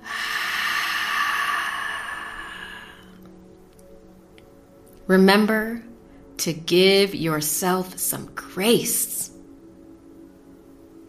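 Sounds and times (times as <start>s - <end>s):
deep breath in through the nose and out through the mouth: 0.0s - 3.3s
speech: 5.1s - 9.3s.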